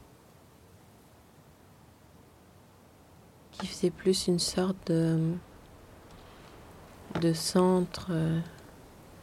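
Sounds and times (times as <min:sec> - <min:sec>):
wind blowing through bare trees: 0:00.0 - 0:09.2
speech: 0:03.6 - 0:05.5, 0:07.2 - 0:08.6.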